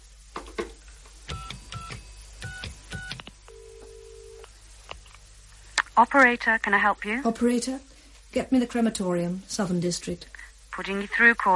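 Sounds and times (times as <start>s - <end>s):
steady telephone tone: 2.5s - 4.5s
speech: 6.0s - 11.5s.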